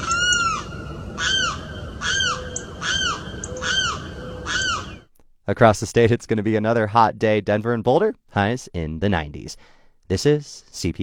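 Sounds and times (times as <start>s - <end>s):
limpkin calling with harsh wailing cries in a rain-soaked wildlife area: 0.0s - 5.0s
faint hiss: 0.2s - 11.0s
speech: 5.5s - 11.0s.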